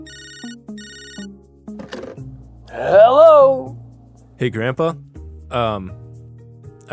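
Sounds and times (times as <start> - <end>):
cell phone electronic ringtone trilling: 0.0 - 1.4
speech: 2.8 - 3.3, 4.4 - 6.0.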